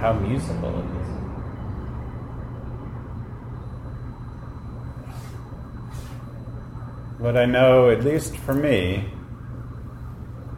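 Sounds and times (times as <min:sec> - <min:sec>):
speech: 0:00.0 - 0:01.4, 0:07.2 - 0:09.2
street traffic outside rumbling: 0:00.0 - 0:06.7.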